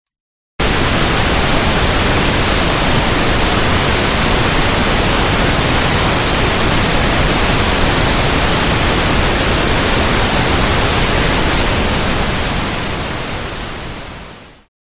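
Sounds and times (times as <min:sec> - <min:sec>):
pink noise: 0:00.6 - 0:14.7.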